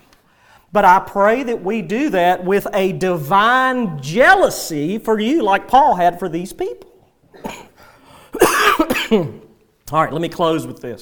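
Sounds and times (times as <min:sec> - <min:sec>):
speech: 0:00.7 - 0:07.6, 0:09.1 - 0:11.0
person coughing: 0:07.3 - 0:09.5.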